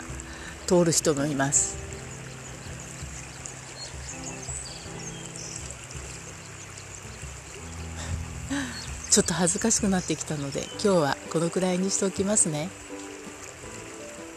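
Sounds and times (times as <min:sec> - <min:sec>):
low rumble: 0:00.0 - 0:10.5
babbling river stream beside a riverside path: 0:00.0 - 0:14.3
speech: 0:00.7 - 0:01.9, 0:09.2 - 0:12.9
faint bird chirps: 0:02.0 - 0:10.8.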